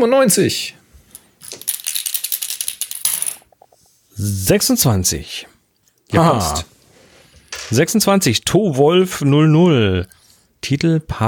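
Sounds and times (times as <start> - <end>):
speech: 0.0 - 0.8, 4.2 - 5.5, 6.1 - 6.7, 7.7 - 11.2
dice clattering across a hard surface: 1.1 - 3.7.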